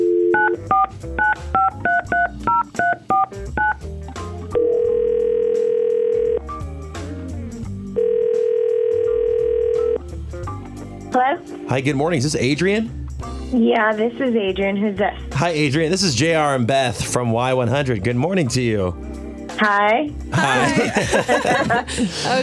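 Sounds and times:
telephone keypad beeps as a number is dialed: 0.0s - 3.8s
telephone ringing tones: 0.0s - 3.8s, 4.6s - 6.5s, 8.0s - 10.0s
speech: 11.7s - 19.0s, 19.6s - 22.4s
laughter: 20.3s - 22.4s.

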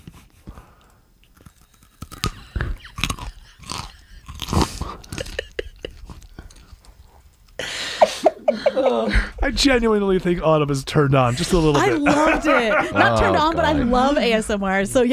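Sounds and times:
wet chewing of raw carrot: 0.8s - 7.6s
teeth biting into a raw carrot: 0.9s - 7.6s
laughter: 2.6s - 6.2s, 7.8s - 9.5s, 11.2s - 14.4s
speech: 8.9s - 15.1s.

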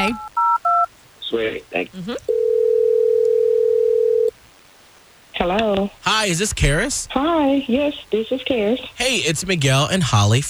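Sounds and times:
speech: 0.0s - 0.3s, 1.3s - 2.6s, 5.4s - 10.4s
quiet telephone line noise: 0.0s - 10.4s
telephone dial tone while calling: 2.3s - 4.3s.

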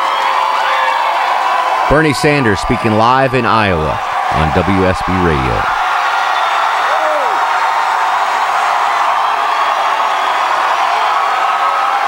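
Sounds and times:
rising whoop or whistle: 0.0s - 1.7s, 6.0s - 7.7s, 8.8s - 12.0s
large rally crowd roaring and cheering: 0.0s - 12.0s
speech: 1.9s - 5.8s.

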